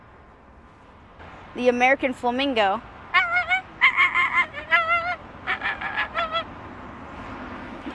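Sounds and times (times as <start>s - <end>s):
speech: 1.5s - 2.9s
person imitating Canada goose honks: 3.2s - 6.4s.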